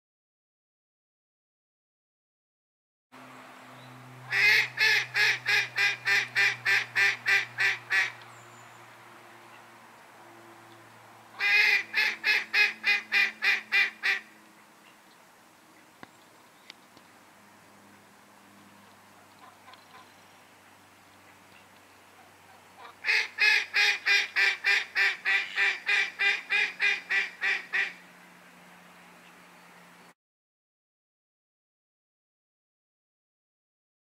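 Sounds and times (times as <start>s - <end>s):
female mallard duck quacking: 4.3s - 8.2s, 11.4s - 14.3s, 21.6s - 28.0s.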